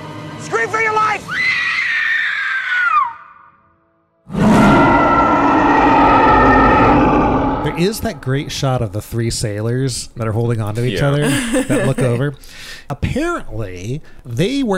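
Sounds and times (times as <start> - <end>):
speech: 0.4 - 1.6, 7.8 - 14.7
woman screaming in terror: 1.3 - 3.5
loud rumbling roar: 4.3 - 8.9
laughter: 10.9 - 12.4.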